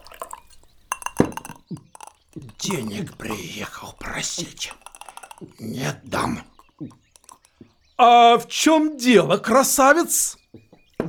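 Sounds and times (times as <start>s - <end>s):
handling noise: 0.0s - 7.5s
water poured into a glass: 0.0s - 7.6s
glass clinking: 0.0s - 8.0s
speech: 2.6s - 4.8s, 5.4s - 7.0s, 8.0s - 10.4s.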